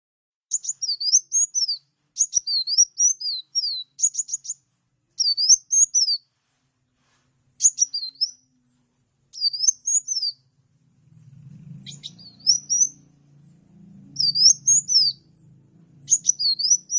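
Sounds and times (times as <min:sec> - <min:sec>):
bird song of high thin whistled phrases with swooping wavering notes: 0:00.5 - 0:06.3, 0:07.6 - 0:08.6, 0:09.3 - 0:10.5, 0:11.8 - 0:15.4, 0:16.0 - 0:16.9.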